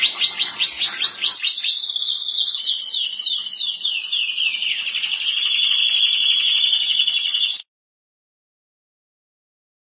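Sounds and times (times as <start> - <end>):
canary singing: 0.0 - 7.7.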